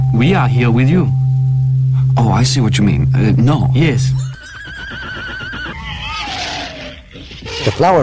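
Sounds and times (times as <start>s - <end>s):
speech: 0.1s - 1.2s, 2.2s - 4.3s, 7.7s - 8.0s
horse whinnying: 4.2s - 7.8s.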